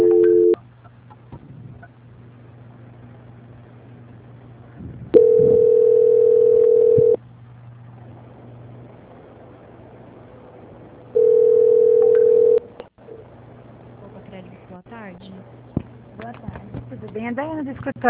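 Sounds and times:
telephone tone while a call is transferred: 0.0 - 0.6, 5.2 - 7.2, 11.2 - 12.6.

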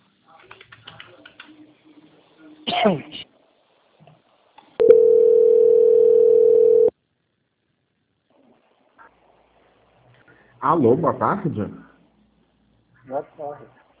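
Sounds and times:
speech: 2.8 - 3.2, 10.7 - 11.8, 13.2 - 13.8
telephone line tone while a call is transferred: 4.8 - 6.9.

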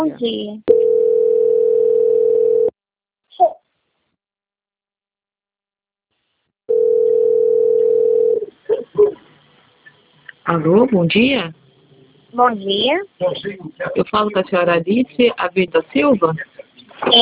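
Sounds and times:
speech: 0.0 - 1.2, 10.5 - 11.6, 12.3 - 17.2
low-pitched telephone tone during a call transfer: 0.7 - 2.7, 6.7 - 8.4.

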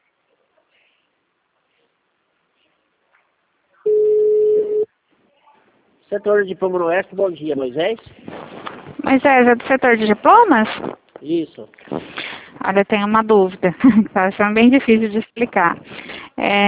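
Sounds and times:
telephone call transfer tone while on hold: 3.9 - 4.9
speech: 6.1 - 8.2, 9.0 - 11.9, 12.7 - 16.6.

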